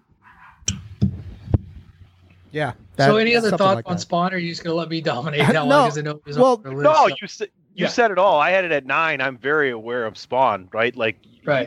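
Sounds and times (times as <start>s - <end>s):
dog barking: 0.2s - 0.7s
speech: 2.5s - 11.6s.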